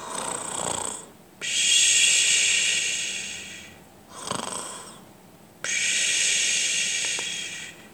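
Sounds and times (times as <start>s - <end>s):
loud snores with a harsh hissy rasp: 0.0s - 1.1s, 4.1s - 5.0s
softer breathy inhale: 2.2s - 5.0s, 5.7s - 7.9s.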